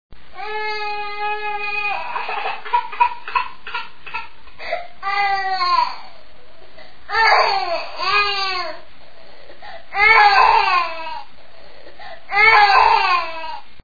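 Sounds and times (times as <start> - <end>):
baby crying: 0.4 - 6.2, 7.1 - 8.8, 9.6 - 11.3, 12.3 - 13.7.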